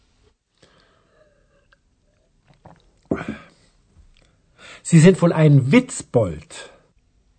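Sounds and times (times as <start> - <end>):
man taking a hearty gulp of beer: 1.5 - 4.4
wet mouth and swallowing noises: 1.6 - 3.4
speech: 4.9 - 6.7.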